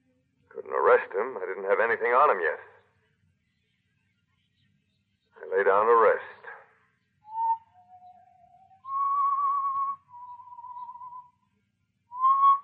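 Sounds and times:
speech: 1.0 - 2.7, 5.4 - 6.4
person whistling a slow tune: 7.3 - 11.3, 12.1 - 12.6.

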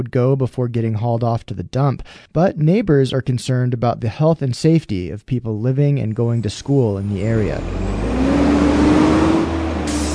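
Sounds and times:
speech: 0.0 - 8.0
garbage truck engine droning: 7.0 - 10.1
garbage truck air brakes hissing: 9.8 - 10.1.

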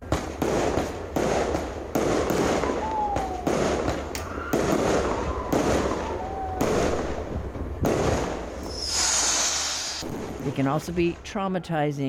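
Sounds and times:
whistling firework rockets rising: 0.0 - 10.2
firecrackers crackling and popping in dense bursts: 0.0 - 11.6
hissing spray of fireworks: 8.7 - 10.0
speech: 10.6 - 12.0.

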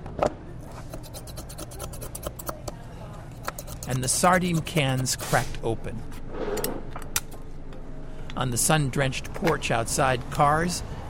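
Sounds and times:
blade scraping marrow bones being trimmed in a restaurant kitchen: 0.7 - 2.7, 3.3 - 5.6
speech: 3.9 - 6.2, 8.4 - 11.0.

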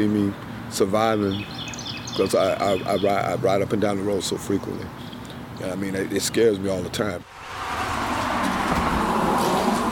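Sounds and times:
speech: 0.0 - 1.6, 2.2 - 5.0, 5.6 - 7.5
truck speeding past on a road: 7.3 - 9.9.

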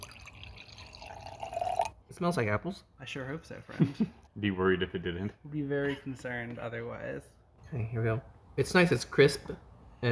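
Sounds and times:
cider pouring into a small flask: 0.0 - 2.0
speech: 2.2 - 10.1.

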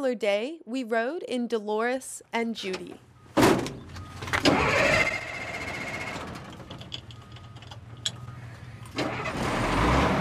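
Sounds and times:
speech: 0.0 - 3.6, 4.4 - 5.1
truck engine cranking and starting: 3.1 - 10.1
truck engine revving: 3.9 - 10.1.

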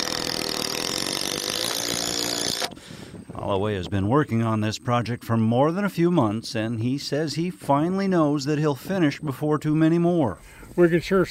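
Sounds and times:
cordless power drill driving a screw into a board: 0.0 - 2.8
speech: 3.5 - 11.2.

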